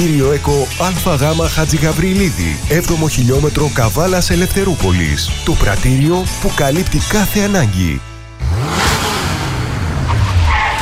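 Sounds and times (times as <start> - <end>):
speech: 0.0 - 8.1
car engine revving: 8.3 - 10.8.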